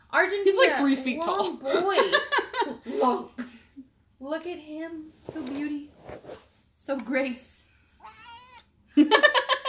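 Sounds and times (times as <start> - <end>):
speech: 0.1 - 3.5, 4.2 - 7.7, 9.0 - 9.6
tall male cat yowling: 8.0 - 8.7.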